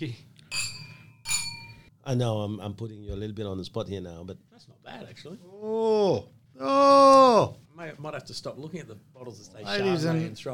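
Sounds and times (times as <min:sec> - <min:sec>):
speech: 0:00.0 - 0:00.3, 0:02.1 - 0:10.5
glasses clinking in a toast: 0:00.5 - 0:01.9.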